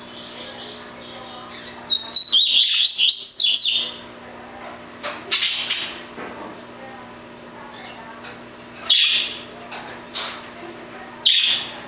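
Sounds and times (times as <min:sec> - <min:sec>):
Double-collared seedeater song: 0:00.0 - 0:04.1, 0:05.3 - 0:06.1, 0:07.7 - 0:08.0, 0:08.8 - 0:10.4, 0:11.2 - 0:11.8.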